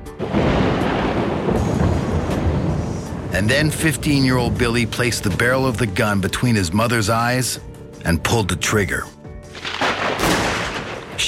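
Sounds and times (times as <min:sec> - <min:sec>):
deep rolling thunder in a thunderstorm: 0:00.0 - 0:06.5, 0:09.6 - 0:11.2
speech: 0:03.4 - 0:09.2.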